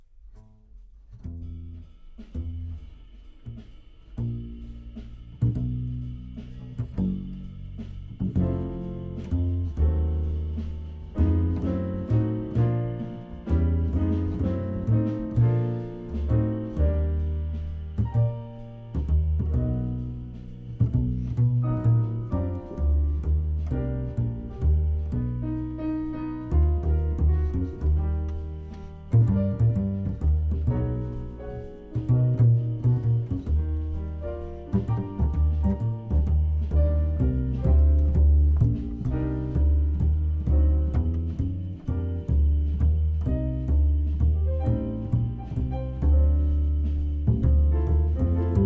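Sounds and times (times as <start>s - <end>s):
contrabass: 0.0s - 48.6s.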